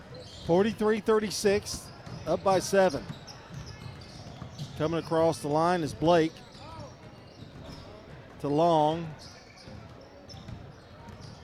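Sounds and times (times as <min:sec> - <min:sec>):
crowd noise: 0:00.0 - 0:11.4
speech: 0:00.5 - 0:03.2, 0:04.8 - 0:06.4, 0:08.4 - 0:09.3
basketball bouncing on a hard gym floor: 0:01.5 - 0:05.1, 0:06.0 - 0:08.5, 0:09.1 - 0:11.4.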